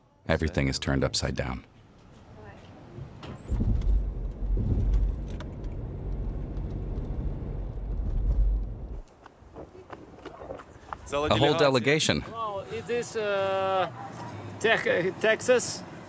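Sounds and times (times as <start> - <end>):
speech: 0.3 - 1.8, 11.1 - 15.9
car engine rumbling while pulling in to park: 2.8 - 9.0.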